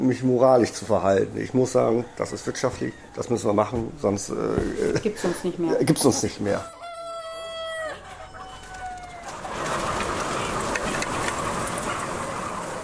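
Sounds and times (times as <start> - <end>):
speech: 0.0 - 6.8
chorus of fowl clucking and squawking in a poultry barn: 1.0 - 12.8
rooster crowing in a poultry barn: 1.2 - 4.4, 6.5 - 11.6.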